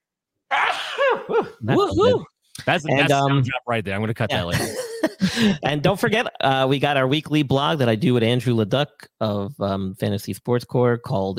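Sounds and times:
person sneezing: 0.6s - 1.6s
speech: 0.7s - 11.3s.

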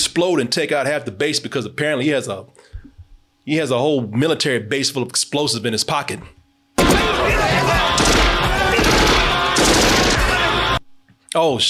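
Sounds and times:
speech: 0.2s - 2.7s, 3.4s - 7.6s, 11.3s - 11.6s
gunfire from soldiers shooting back at a lone man: 6.8s - 7.2s, 8.0s - 10.5s.

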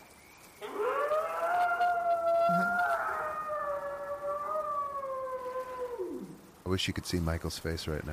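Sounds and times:
faint hiss: 0.0s - 8.1s
eerie howling cry: 0.6s - 6.5s
speech: 6.7s - 8.1s.

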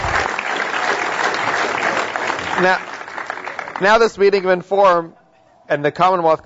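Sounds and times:
sustained audience applause from many hands: 0.0s - 5.0s
speech: 2.6s - 2.9s, 3.8s - 6.4s.

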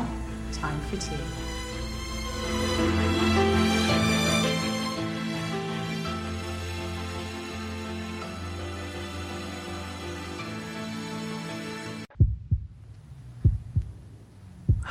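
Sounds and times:
lush sustained orchestral music: 0.0s - 12.1s
speech: 0.6s - 1.7s, 2.4s - 2.8s
heartbeat sound effect: 12.1s - 14.0s, 14.6s - 14.8s.

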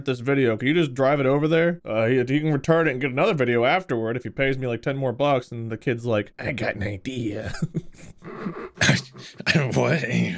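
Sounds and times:
speech: 0.0s - 10.3s
person clearing throat in rough raspy bursts: 8.2s - 10.3s.

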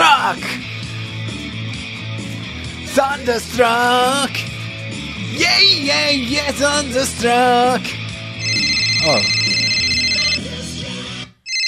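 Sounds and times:
speech: 0.3s - 0.8s, 3.0s - 4.5s, 5.4s - 8.0s, 9.0s - 9.6s
loud bright electronic phone ringtone for an incoming call: 8.4s - 10.6s, 11.4s - 11.6s.

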